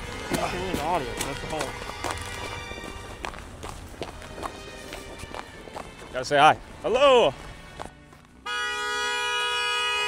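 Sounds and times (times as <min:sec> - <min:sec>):
speech: 0:00.4 - 0:01.9, 0:06.2 - 0:07.4
car horn blaring a long steady note: 0:08.4 - 0:10.0.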